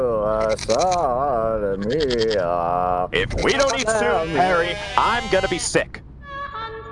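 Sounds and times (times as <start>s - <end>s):
speech: 0.0s - 6.0s
goats bleating: 0.4s - 1.0s, 1.8s - 2.4s, 3.2s - 5.8s.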